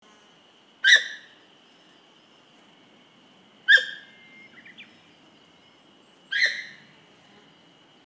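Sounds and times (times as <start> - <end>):
soft background hiss: 0.0 - 8.0
Sika deer squeaky calls: 3.7 - 4.0, 6.3 - 6.8.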